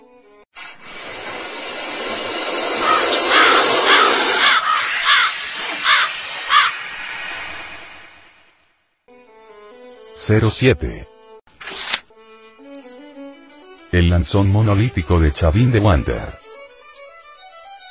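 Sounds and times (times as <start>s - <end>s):
steady rushing hiss: 0.6s - 9.0s
eagle screeching: 2.8s - 7.6s
speech: 10.3s - 11.2s, 13.9s - 16.4s.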